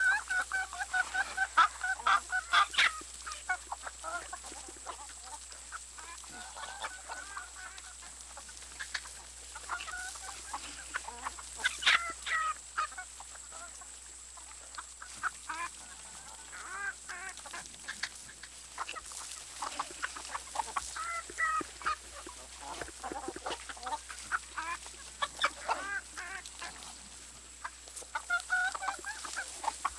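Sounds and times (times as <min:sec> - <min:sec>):
farm: 0:00.0 - 0:29.9.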